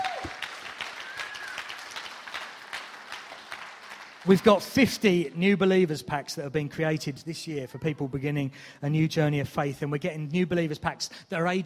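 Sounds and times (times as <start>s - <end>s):
audience applauding with many hands clapping: 0.0s - 5.2s
speech: 4.2s - 11.6s.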